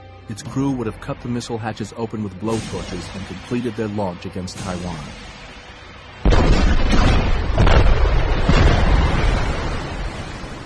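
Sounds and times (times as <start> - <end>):
speech: 0.3 - 5.4
torpedoes exploding underwater beneath a submarine: 6.2 - 10.6.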